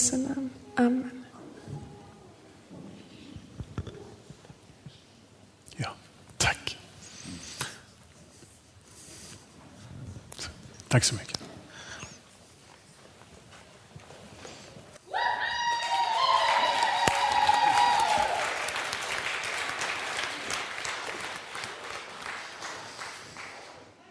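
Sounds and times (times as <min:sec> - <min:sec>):
speech: 0:00.1 - 0:01.2, 0:10.9 - 0:11.4
audience at a church service cheering: 0:15.1 - 0:23.5
audience at a church service applauding: 0:15.3 - 0:24.0.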